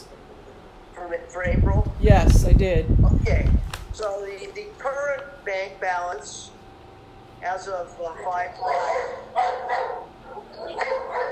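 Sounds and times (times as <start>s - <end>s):
speech: 1.1s - 6.6s, 7.4s - 11.3s
dog barking: 8.6s - 11.3s.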